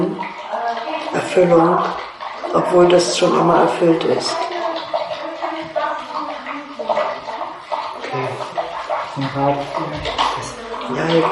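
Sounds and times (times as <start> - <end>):
water flowing through pipes inside a wall: 0.0 - 11.2
speech: 1.3 - 4.5, 9.3 - 11.2.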